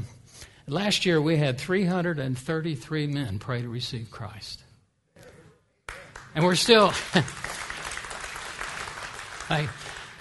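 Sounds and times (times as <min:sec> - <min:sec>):
speech: 0:00.7 - 0:04.7, 0:06.4 - 0:07.5, 0:09.5 - 0:09.9
crowd applauding: 0:05.9 - 0:10.2.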